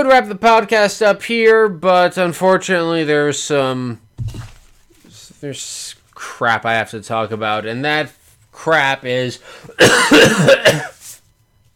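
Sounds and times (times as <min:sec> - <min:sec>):
speech: 0:00.0 - 0:04.4, 0:05.4 - 0:10.9
throaty breath: 0:09.4 - 0:09.8
person coughing: 0:09.7 - 0:11.1.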